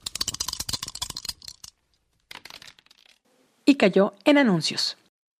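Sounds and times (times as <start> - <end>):
dice rolling with clatter of small hard objects: 0.0 - 3.2
speech: 3.7 - 5.0.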